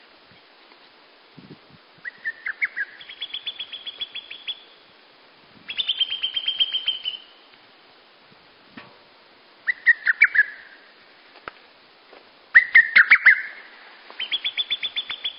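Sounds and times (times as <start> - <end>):
bird singing at dawn in rapid bursts: 2.1 - 4.9, 5.7 - 7.4, 9.7 - 10.8, 12.6 - 15.3.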